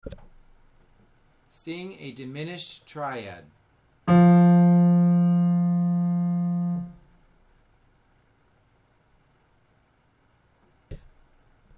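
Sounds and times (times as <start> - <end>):
F diminished triad chord: 4.1 - 7.1.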